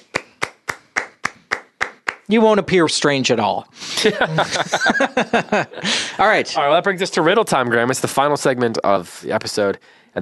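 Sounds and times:
one person clapping hands: 0.0 - 2.3
speech: 2.3 - 10.1
laughter: 4.0 - 6.5.

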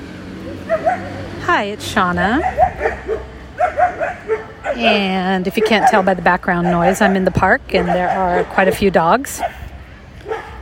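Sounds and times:
soft dog yelp: 0.5 - 1.3, 2.4 - 8.8, 10.2 - 10.6
dog barking: 0.6 - 1.2, 2.4 - 9.6, 10.2 - 10.6.

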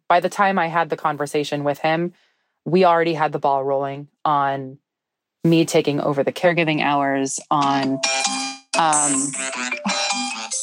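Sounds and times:
speech: 0.1 - 4.8, 5.4 - 10.0
phone alarm playing a bright electronic melody: 7.6 - 10.6.

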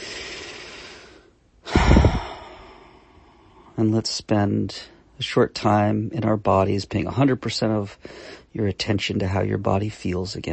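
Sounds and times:
long deep breath: 0.0 - 3.8, 8.0 - 8.5
speech: 3.8 - 10.5.

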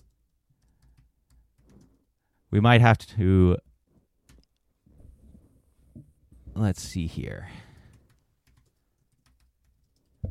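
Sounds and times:
fast furious typing on a computer keyboard: 0.0 - 2.0, 7.8 - 10.2
speech: 2.5 - 3.6, 6.6 - 7.6.

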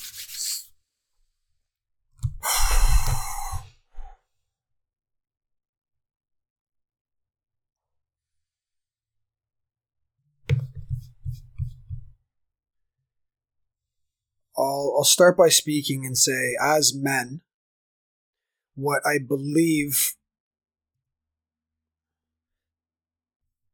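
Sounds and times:
man taking a deep noisy breath in: 2.3 - 4.2
speech: 14.6 - 17.5, 18.8 - 20.2.

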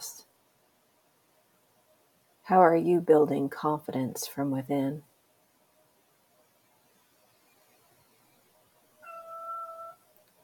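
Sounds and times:
speech: 2.5 - 5.1
cat meowing to be let out: 9.0 - 10.0.

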